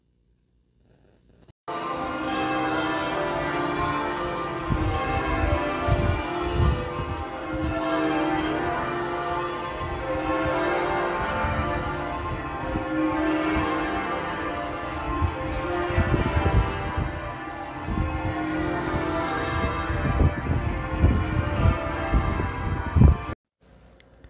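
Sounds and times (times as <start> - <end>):
church bells pealing: 1.7 - 23.4.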